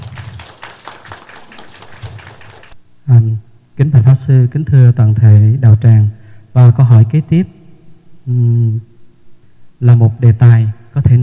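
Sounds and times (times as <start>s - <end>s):
audience at a Buddhist dharma assembly applauding: 0.0s - 2.8s
speech: 3.1s - 7.6s, 8.3s - 8.9s, 9.8s - 11.2s.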